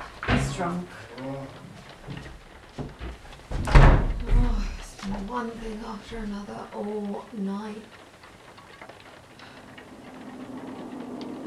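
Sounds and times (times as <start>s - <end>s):
speech: 0.6s - 3.0s, 5.0s - 8.0s
knocking on a door: 2.8s - 4.5s.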